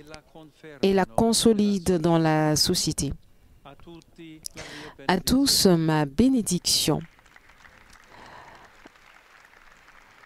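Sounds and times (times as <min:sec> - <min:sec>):
speech: 0:00.0 - 0:07.2
large crowd of pilgrims applauding: 0:07.0 - 0:10.2.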